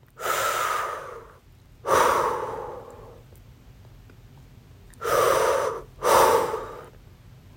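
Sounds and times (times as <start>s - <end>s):
slow deep breaths inhaling and exhaling: 0.2s - 3.2s, 5.0s - 7.0s.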